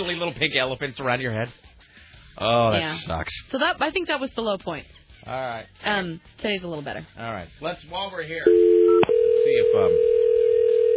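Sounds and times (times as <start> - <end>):
speech: 0.0 - 1.7, 2.4 - 8.7, 9.5 - 10.2
telephone dial tone while someone places a call: 8.5 - 10.9.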